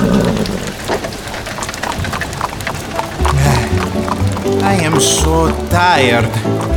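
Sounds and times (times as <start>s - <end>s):
horses' hooves clopping at a walking pace: 0.0s - 6.7s
low rumble of wagon wheels: 0.0s - 6.7s
steady rain hissing: 0.0s - 6.7s
speech: 4.9s - 6.7s.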